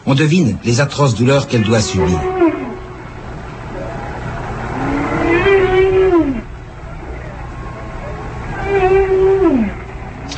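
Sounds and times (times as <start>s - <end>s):
speech: 0.1s - 2.8s
whale calls recorded underwater: 1.4s - 10.2s.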